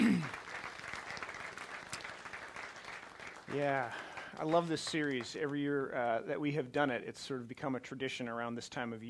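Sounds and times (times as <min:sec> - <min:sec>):
audience clapping: 0:00.0 - 0:05.9
speech: 0:03.5 - 0:09.0.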